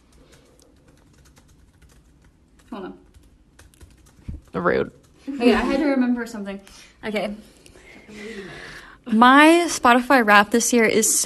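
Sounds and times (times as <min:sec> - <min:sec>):
typing on a keyboard: 0:00.0 - 0:05.2
low hum: 0:00.0 - 0:11.2
speech: 0:02.7 - 0:03.1, 0:04.5 - 0:07.5, 0:08.1 - 0:11.2.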